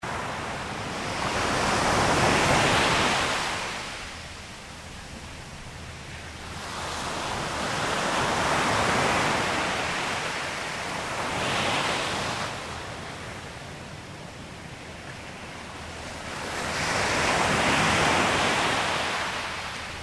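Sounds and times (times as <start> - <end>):
waves on a beach: 0.0 - 20.0.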